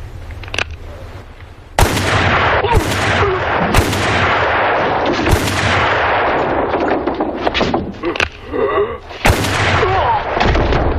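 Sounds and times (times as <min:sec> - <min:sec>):
rumbling noise: 0:00.0 - 0:10.9
gunshots in a western radio drama: 0:01.8 - 0:08.0, 0:09.2 - 0:10.9.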